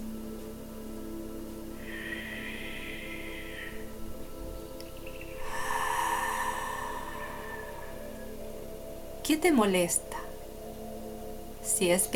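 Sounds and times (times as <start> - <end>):
breathing: 1.8 - 4.7, 5.3 - 8.8
speech: 9.3 - 10.2, 11.7 - 12.1.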